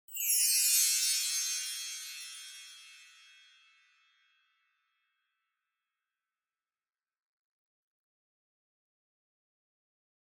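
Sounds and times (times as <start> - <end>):
wind chimes with reverb: 0.1 - 4.4.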